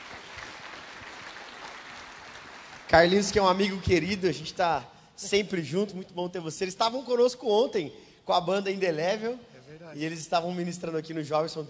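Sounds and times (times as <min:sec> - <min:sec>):
church congregation applauding: 0:00.0 - 0:03.8
speech: 0:02.9 - 0:11.6.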